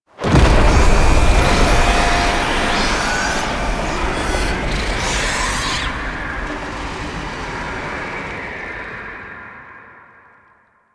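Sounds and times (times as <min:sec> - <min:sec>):
hub alarm stinger: 0:00.2 - 0:07.4.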